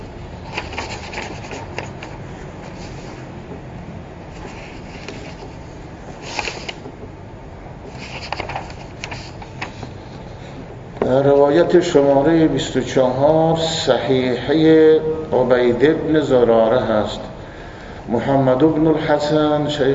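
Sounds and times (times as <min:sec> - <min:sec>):
book page paper rustling and rubbing: 0:00.0 - 0:03.6, 0:04.2 - 0:07.0, 0:07.8 - 0:11.6
paper crinkling while fumbling to turn a book page: 0:00.4 - 0:03.3, 0:04.3 - 0:07.0, 0:07.9 - 0:10.6
speech: 0:11.1 - 0:17.3, 0:18.1 - 0:19.9.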